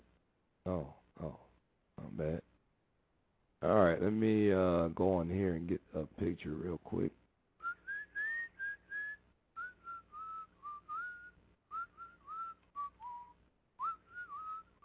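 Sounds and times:
speech: 0:00.7 - 0:01.4, 0:02.2 - 0:02.5, 0:03.6 - 0:07.2
person whistling a song: 0:07.6 - 0:14.8.

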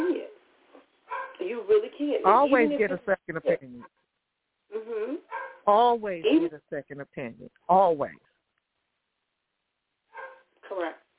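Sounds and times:
dog barking short tinny bark: 0:01.1 - 0:01.4, 0:05.3 - 0:05.6, 0:10.2 - 0:10.5
speech: 0:01.7 - 0:04.0, 0:04.7 - 0:08.3.

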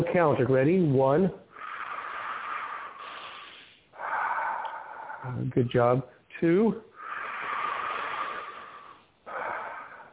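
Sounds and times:
speech: 0:00.0 - 0:01.4, 0:05.2 - 0:06.9
slow deep human breathing: 0:01.5 - 0:05.4, 0:06.9 - 0:10.1.

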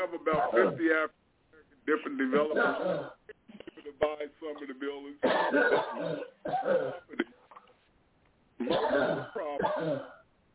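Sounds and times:
speech: 0:00.2 - 0:01.2, 0:01.8 - 0:07.4, 0:08.6 - 0:10.2
participant coughing on a conference call line: 0:00.3 - 0:00.9, 0:02.3 - 0:03.8, 0:05.2 - 0:07.4, 0:08.6 - 0:10.2.

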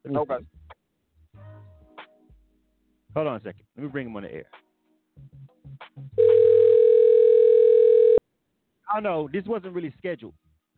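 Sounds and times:
speech: 0:00.1 - 0:00.6, 0:03.1 - 0:04.6, 0:08.9 - 0:10.4
telephone ringback tone during a call: 0:06.2 - 0:08.2.

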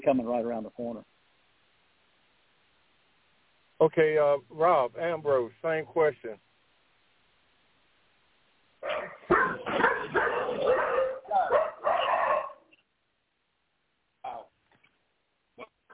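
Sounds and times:
speech: 0:00.1 - 0:01.2, 0:03.8 - 0:06.5
dogs barking: 0:08.8 - 0:12.7.

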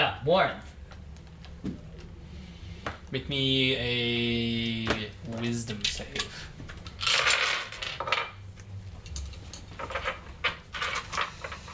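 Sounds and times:
speech: 0:00.0 - 0:00.7, 0:01.6 - 0:01.8, 0:03.1 - 0:06.5
dice rattling and clattering across a hard table in an apartment: 0:06.9 - 0:08.4, 0:09.8 - 0:11.7.

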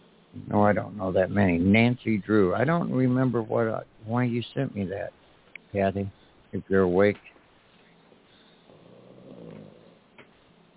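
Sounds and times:
speech: 0:00.4 - 0:07.3
low rumbling snore: 0:08.7 - 0:10.0.

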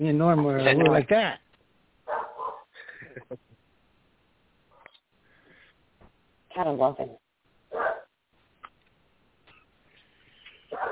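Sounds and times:
speech: 0:00.0 - 0:01.4, 0:06.6 - 0:07.2
dogs barking: 0:02.1 - 0:02.7, 0:07.7 - 0:08.2, 0:10.7 - 0:10.8.

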